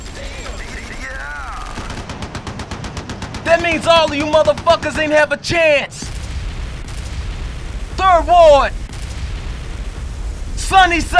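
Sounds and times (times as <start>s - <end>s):
gunfire sound effect with rapid bursts of shots: 0.0s - 11.1s
speech: 3.4s - 6.1s, 8.1s - 8.8s, 10.7s - 11.1s.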